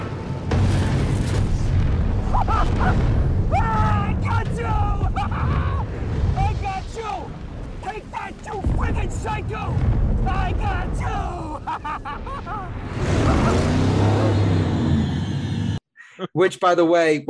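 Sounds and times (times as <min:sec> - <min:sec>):
fiery explosion with heavy rumbling booms: 0:00.4 - 0:14.4
laughter: 0:05.1 - 0:05.8, 0:11.2 - 0:13.8
speech: 0:09.0 - 0:13.8, 0:16.3 - 0:17.2
muscle car engine roaring and revving during a car chase: 0:12.6 - 0:15.8.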